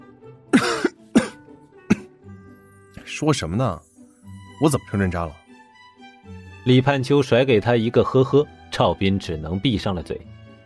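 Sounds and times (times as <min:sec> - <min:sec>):
man coughing awkwardly with a throaty rasp: 0:00.5 - 0:02.1
speech: 0:03.1 - 0:03.9, 0:04.6 - 0:05.4, 0:06.6 - 0:10.3.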